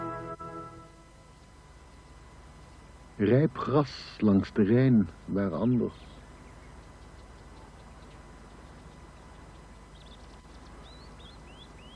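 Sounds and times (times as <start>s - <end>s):
speech: 3.2s - 6.1s
small bird singing among grass along the Rhine at Arnhem: 5.5s - 11.9s.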